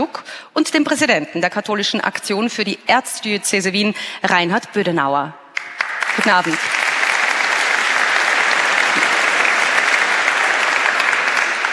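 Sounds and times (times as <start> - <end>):
speech: 0.0 - 6.8
large audience applause: 5.6 - 11.7.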